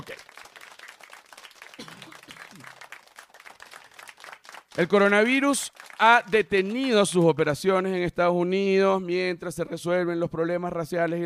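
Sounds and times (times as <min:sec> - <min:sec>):
steady dense applause from a crowd: 0:00.0 - 0:06.3
speech: 0:04.8 - 0:11.2.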